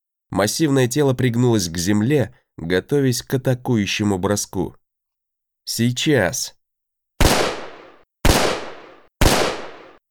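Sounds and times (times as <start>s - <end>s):
speech: 0.3s - 4.8s, 5.6s - 6.6s
gunshots from a guard's gun: 7.2s - 10.0s.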